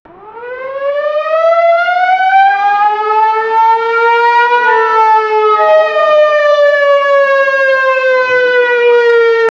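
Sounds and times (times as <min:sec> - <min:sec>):
air raid siren: 0:00.1 - 0:09.4.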